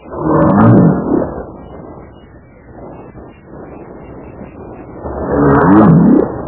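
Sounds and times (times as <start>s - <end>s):
blue whale roar: 0.0s - 1.5s, 5.0s - 6.4s.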